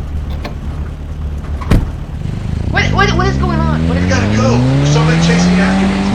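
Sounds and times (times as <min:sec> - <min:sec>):
Jeep engine idling: 0:00.0 - 0:05.4
Jeep door shutting: 0:01.6 - 0:02.0.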